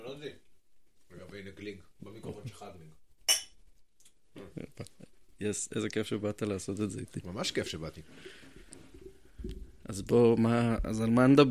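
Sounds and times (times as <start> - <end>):
whisky glasses clinking in a toast: 3.3 - 3.6
speech: 5.4 - 8.5, 9.9 - 11.4.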